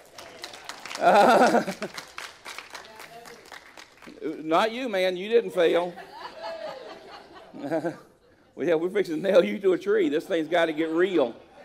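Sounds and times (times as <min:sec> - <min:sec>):
small audience clapping: 0:00.0 - 0:04.7
laughter: 0:00.4 - 0:02.2, 0:05.7 - 0:11.6
speech: 0:01.0 - 0:02.1, 0:04.2 - 0:06.1, 0:07.6 - 0:11.4.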